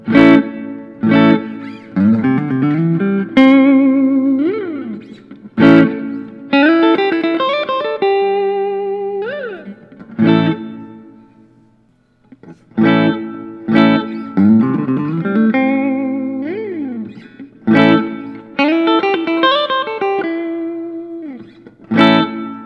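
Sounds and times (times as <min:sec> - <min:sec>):
Collings I-35 tobacco sunburst playing: 0:00.0 - 0:22.6.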